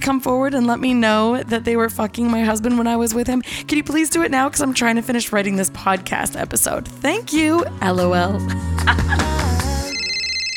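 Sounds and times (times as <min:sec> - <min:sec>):
speech: 0:00.0 - 0:09.3
laughter: 0:08.8 - 0:09.5
phone ringing with loud electronic ringtone: 0:09.8 - 0:10.5.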